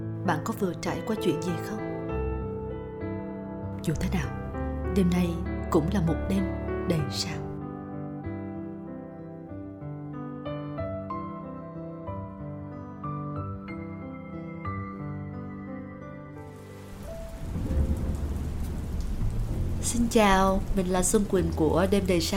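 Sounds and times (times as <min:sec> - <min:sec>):
gentle melodic tune: 0:00.0 - 0:22.3
speech: 0:00.3 - 0:01.9, 0:03.8 - 0:04.4, 0:05.0 - 0:07.4, 0:20.1 - 0:22.3
loud steady downpour of rain: 0:16.5 - 0:22.3.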